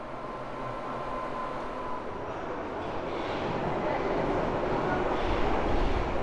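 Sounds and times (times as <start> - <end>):
subway train in motion heard from inside the carriage: 0.0 - 6.2.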